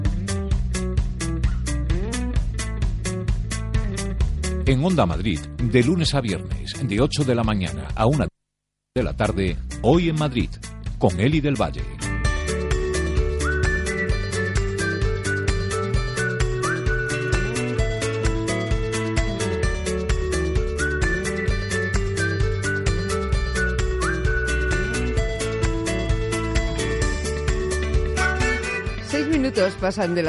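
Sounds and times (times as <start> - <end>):
full steady musical backing with a driving beat: 0.0 - 7.8, 9.1 - 30.2
speech: 4.7 - 8.3, 9.0 - 12.0, 29.6 - 30.2
whistled melody: 12.7 - 19.5, 20.4 - 28.8.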